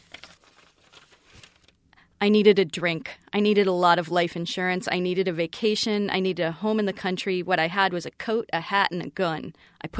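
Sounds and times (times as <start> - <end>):
sheet of paper pulled out, rustling and crinkling: 0.0 - 1.8
speech: 2.2 - 9.9.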